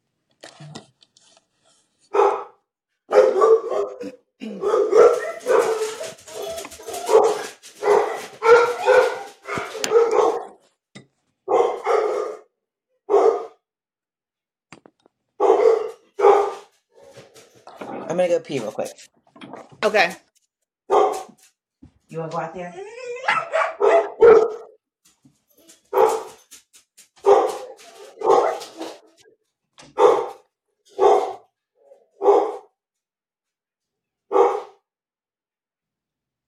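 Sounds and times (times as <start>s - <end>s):
dogs barking: 2.1s - 10.6s, 11.5s - 12.5s, 13.1s - 13.6s, 15.4s - 17.5s, 20.9s - 21.4s, 23.1s - 24.8s, 25.7s - 26.6s, 27.2s - 32.7s, 34.3s - 34.8s
dogs whimpering yelps: 4.5s - 9.9s, 22.6s - 23.6s
speech: 18.2s - 19.2s, 19.8s - 20.2s, 22.1s - 22.8s.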